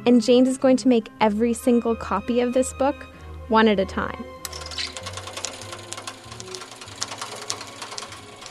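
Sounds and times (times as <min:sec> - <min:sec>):
speech: 0:00.0 - 0:04.8
Smythe-style book-sewing machine running: 0:04.5 - 0:08.4.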